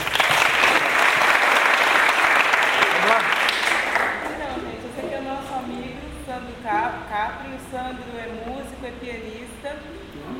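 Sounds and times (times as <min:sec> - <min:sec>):
audience applause at a live music event: 0:00.0 - 0:04.4.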